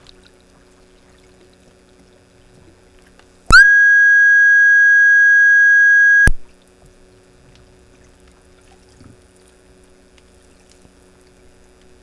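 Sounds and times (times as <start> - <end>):
underwater background noise from hydrophones: 3.5 - 6.4.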